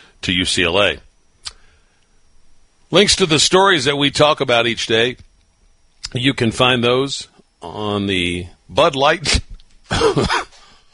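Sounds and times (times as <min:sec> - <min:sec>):
speech: 0:00.2 - 0:01.1, 0:02.9 - 0:05.3, 0:06.1 - 0:10.5
person coughing: 0:09.9 - 0:10.7.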